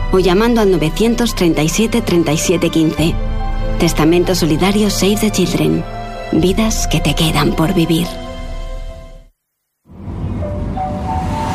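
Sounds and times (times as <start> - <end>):
speech: 0.1 - 8.3
rush of rail noise: 9.9 - 11.5
metro train rumbling and humming: 10.0 - 11.5.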